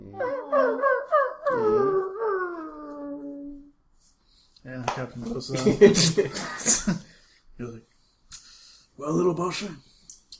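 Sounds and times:
voice imitating a little squig whimpering: 0.0s - 3.5s
speech: 5.0s - 7.7s, 9.1s - 9.9s.

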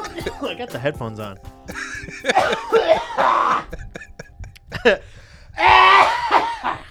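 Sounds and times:
coughing into microphone for mic check: 0.0s - 6.8s
laughter: 0.0s - 6.8s
speech: 0.2s - 3.9s, 4.8s - 6.0s
person breathing: 1.8s - 6.8s.

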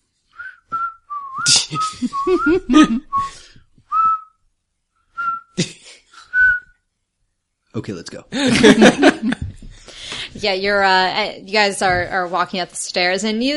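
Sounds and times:
tuneless whistling: 0.3s - 4.4s, 5.1s - 5.6s, 6.2s - 6.8s
speech: 1.7s - 3.5s, 7.8s - 9.5s, 10.4s - 13.5s
breathy puffs: 1.8s - 3.7s, 9.6s - 10.4s.

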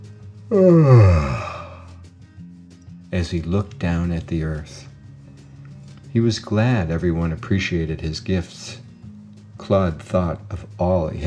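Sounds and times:
speech: 0.5s - 1.2s, 3.2s - 4.9s, 6.1s - 8.8s, 9.7s - 11.2s
person imitating a yawn: 0.5s - 2.0s.

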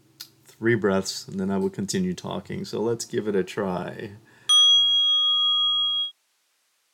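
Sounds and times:
speech: 0.6s - 4.3s
meditation bell ringing: 4.5s - 6.2s.

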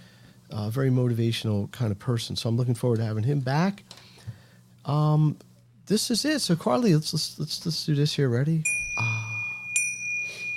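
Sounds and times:
speech: 0.6s - 4.0s, 4.8s - 9.1s
bright metallic Tibetan chime ringing: 8.7s - 10.5s.

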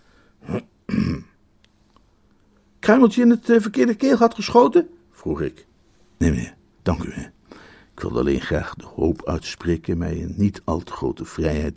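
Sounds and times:
polite little cough, throat clearing: 0.5s - 1.4s
speech: 2.9s - 7.4s, 8.0s - 11.7s.

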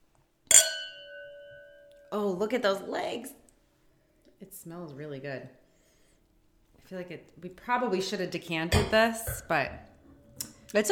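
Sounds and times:
wine glasses clinking in a toast over red wine: 0.5s - 2.1s
speech: 2.1s - 3.4s, 4.4s - 5.6s, 6.9s - 9.9s, 10.7s - 10.9s.

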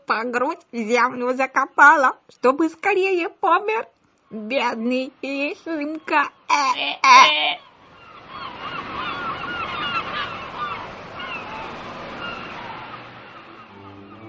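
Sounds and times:
speech: 0.1s - 7.7s
many ducks quacking and chattering: 5.7s - 14.2s.

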